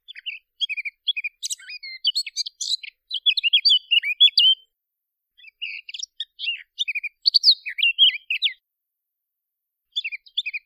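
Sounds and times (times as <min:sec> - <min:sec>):
blackcap: 0:00.1 - 0:04.6, 0:05.4 - 0:08.6, 0:09.9 - 0:10.6.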